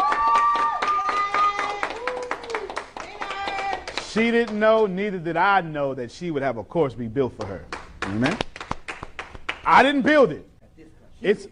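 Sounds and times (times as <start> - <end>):
audience clapping in celebration: 0.0 - 4.9, 7.4 - 9.9
speech: 4.2 - 8.4, 9.7 - 11.5.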